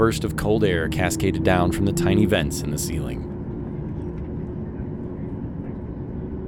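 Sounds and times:
speech: 0.0 - 3.3
jet airplane engine spooling up heard from inside the passenger cabin: 0.0 - 4.4.

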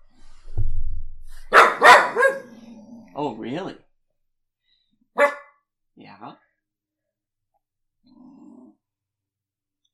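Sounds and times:
dog barking: 1.5 - 2.6, 5.2 - 5.6
dog low half-growl: 2.3 - 3.4, 8.0 - 9.0
speech: 3.2 - 3.8.

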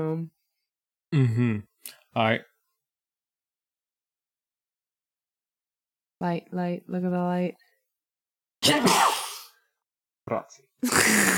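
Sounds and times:
speech: 0.0 - 0.4, 1.1 - 2.5, 6.2 - 7.6, 8.7 - 9.2, 10.3 - 11.3
person sneezing: 8.6 - 9.6, 10.8 - 11.3.

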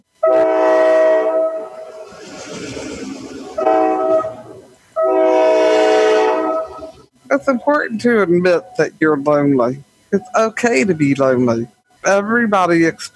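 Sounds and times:
passing train horn blasts: 0.2 - 2.0, 3.6 - 7.0
low rumble of train rolling by: 1.4 - 7.1
speech: 7.4 - 13.1.

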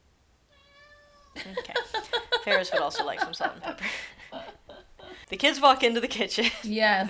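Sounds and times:
low hum: 0.0 - 7.0
cat meowing: 0.5 - 1.4
speech: 1.4 - 1.8, 2.4 - 4.1, 5.3 - 7.0
laughter: 1.4 - 5.3.

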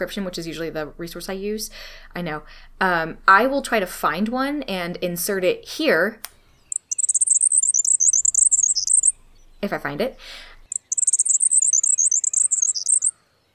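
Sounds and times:
speech: 0.0 - 6.3, 9.6 - 10.5
grasshopper sparrow flight song while flying: 6.4 - 13.5.

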